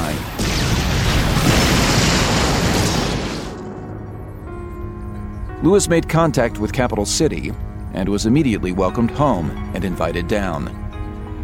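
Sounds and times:
roaring explosion of two transmutation engines blasted apart by a fleet: 0:00.0 - 0:03.8
speech: 0:05.6 - 0:10.8.

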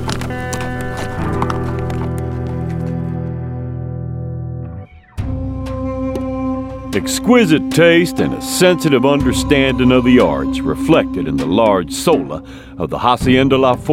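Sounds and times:
horse hooves clip-clopping on the way toward Trinidad Colorado: 0:00.0 - 0:03.4
steady sustained musical drone: 0:05.2 - 0:13.9
speech: 0:07.0 - 0:13.9.

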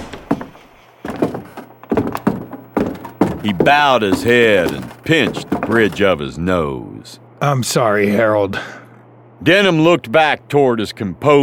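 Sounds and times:
wooden door thunks as door is pulled open: 0:00.0 - 0:06.1
faint rattling: 0:00.0 - 0:06.2
speech: 0:03.4 - 0:08.8, 0:09.4 - 0:11.4.

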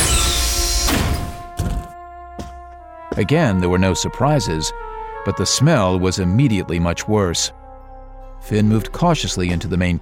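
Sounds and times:
heavy airlock inner door on a ship opening with pneumatic hiss: 0:00.0 - 0:01.4
speech: 0:03.2 - 0:07.6, 0:08.4 - 0:10.0.

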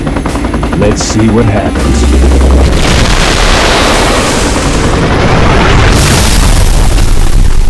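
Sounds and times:
speech: 0:00.8 - 0:02.8
sustained combined gunfire blast obliterating an aircraft: 0:01.8 - 0:07.6.

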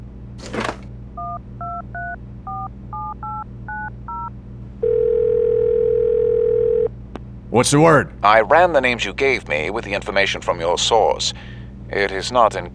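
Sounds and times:
loud continuous telephone line tone: 0:01.2 - 0:07.0
speech: 0:07.5 - 0:12.7.

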